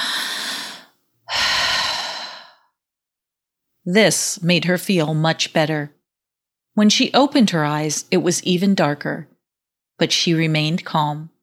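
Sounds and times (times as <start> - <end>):
woman taking slow deep breaths to calm herself: 0.0 - 2.7
speech: 3.9 - 6.0, 6.8 - 9.3, 10.0 - 11.3.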